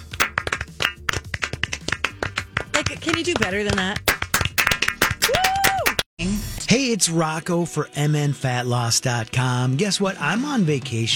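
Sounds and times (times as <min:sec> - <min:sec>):
a few people clapping hands: 0:00.0 - 0:06.1
speech: 0:02.9 - 0:04.1, 0:06.2 - 0:11.1.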